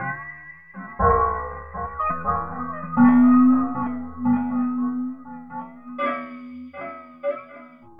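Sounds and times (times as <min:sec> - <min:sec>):
synth arpeggio: 0:01.0 - 0:07.1.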